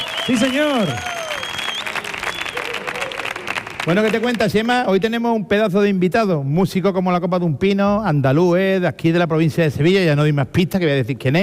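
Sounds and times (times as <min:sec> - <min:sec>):
studio audience cheering and shouting: 0:00.0 - 0:03.6
studio audience at a live show clapping: 0:00.0 - 0:04.8
speech: 0:00.3 - 0:01.2, 0:03.8 - 0:11.4.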